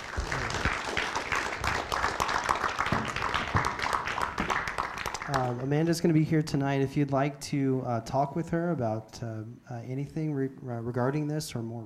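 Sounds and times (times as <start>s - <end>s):
crowd applauding: 0.0s - 5.6s
speech: 5.3s - 11.8s.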